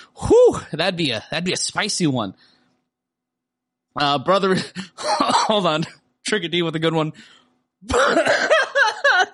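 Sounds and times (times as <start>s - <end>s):
speech: 0.3s - 2.5s, 4.0s - 8.6s
person coughing: 4.6s - 5.8s, 7.8s - 9.3s
laughter: 8.6s - 9.3s.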